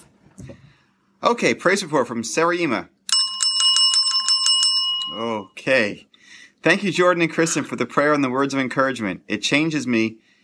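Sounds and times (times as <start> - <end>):
speech: 1.2 - 3.0, 5.2 - 10.3
small bell ringing rapidly: 3.1 - 5.6.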